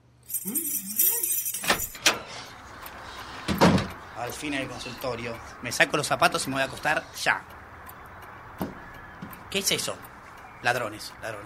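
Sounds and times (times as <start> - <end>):
keys jangling while unlocking a door: 0.2 - 2.2
speech: 0.4 - 1.1, 4.2 - 7.6, 9.5 - 11.4
person muttering: 0.4 - 1.4.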